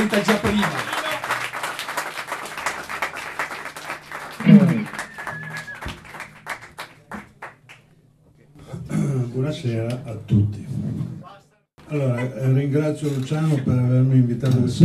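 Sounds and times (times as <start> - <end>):
speech: 0.0 - 1.0, 9.5 - 10.6, 11.9 - 14.8
audience clapping for a guitarist called onto the stage: 0.0 - 7.9.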